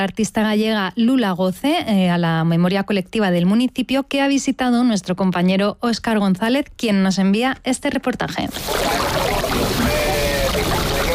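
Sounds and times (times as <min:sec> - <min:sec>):
speech: 0:00.0 - 0:10.0
sea water washing against a stone breakwater: 0:08.5 - 0:11.1.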